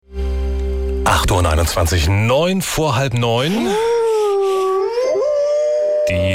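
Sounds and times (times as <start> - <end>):
speech: 1.0 - 3.9
wolf howling in the morning: 3.6 - 6.3.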